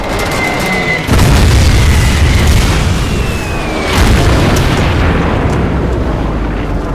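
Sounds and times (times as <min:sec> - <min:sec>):
whistling diving whine: 0:00.0 - 0:04.2
heavy dive bomb explosions around a destroyer: 0:01.0 - 0:06.9.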